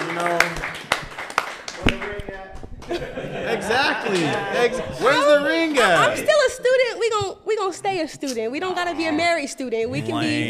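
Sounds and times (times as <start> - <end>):
people clapping: 0.0 - 4.7
people talking and laughing: 2.1 - 10.4
speech: 2.9 - 10.4.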